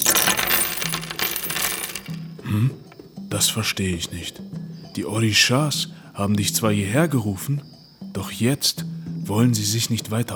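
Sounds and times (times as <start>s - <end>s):
shells, stones and coins tossed onto a hard table: 0.0s - 3.1s
speech: 3.4s - 10.3s.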